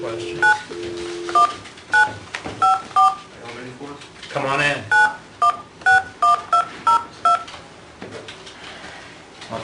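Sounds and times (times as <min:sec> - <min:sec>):
speech: 0:00.0 - 0:00.8
dual-tone telephone keypad beeps: 0:01.3 - 0:03.2, 0:04.9 - 0:07.5.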